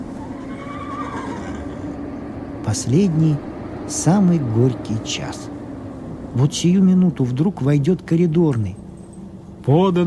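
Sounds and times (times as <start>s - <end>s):
steady low rumble: 0.0s - 10.0s
horse neighing in a courtyard: 0.1s - 2.0s
speech: 2.7s - 5.5s, 6.3s - 8.8s, 9.6s - 10.0s.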